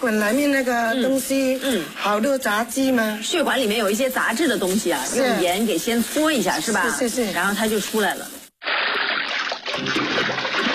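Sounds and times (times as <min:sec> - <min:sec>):
speech: 0:00.0 - 0:08.4, 0:09.8 - 0:10.1
running water rinsing salt-rubbed beef lung: 0:08.6 - 0:10.7.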